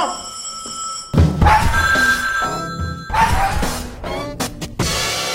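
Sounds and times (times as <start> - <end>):
telephone ringing: 0.0 - 3.2
clattering thuds: 1.2 - 5.2.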